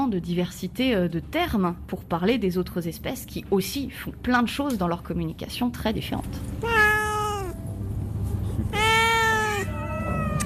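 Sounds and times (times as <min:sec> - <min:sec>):
speech: 0:00.1 - 0:06.8
cat meowing: 0:06.6 - 0:07.6, 0:08.7 - 0:10.4.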